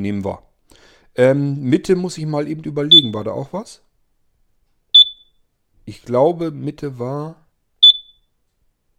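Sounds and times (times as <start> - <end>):
speech: 0.0 - 0.5, 1.2 - 3.8, 5.9 - 7.4
high-pitched electronic alarm clock beep: 2.9 - 3.2, 5.0 - 5.4, 7.8 - 8.3.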